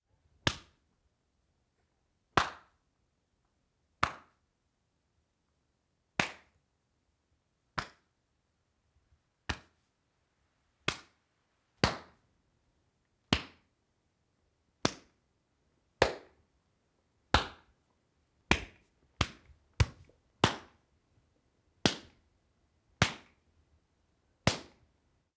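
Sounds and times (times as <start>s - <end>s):
slappy back slap impacts: 0.4s - 0.8s, 2.4s - 2.7s, 4.0s - 4.4s, 6.2s - 6.5s, 7.8s - 8.0s, 9.5s - 9.8s, 10.9s - 11.2s, 11.8s - 12.2s, 13.3s - 13.7s, 14.8s - 15.2s, 16.0s - 16.4s, 17.4s - 17.7s, 18.5s - 20.8s, 21.8s - 22.2s, 23.0s - 23.4s, 24.5s - 24.9s.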